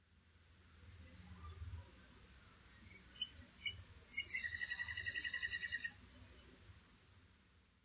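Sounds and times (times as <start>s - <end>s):
little grebe calling at night: 2.8s - 6.0s.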